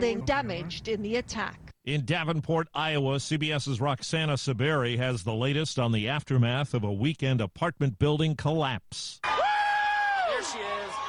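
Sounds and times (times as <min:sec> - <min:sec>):
speech: 0:00.0 - 0:09.3
crowd of onlookers cheering outdoors in Davenport Iowa: 0:09.2 - 0:11.0
loud sustained whoop from a crowd of onlookers: 0:09.2 - 0:11.0.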